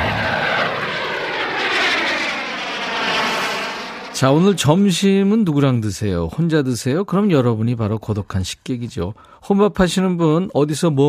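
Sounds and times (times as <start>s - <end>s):
airplane passing overhead with broad engine roar: 0.0s - 5.1s
speech: 4.2s - 11.0s.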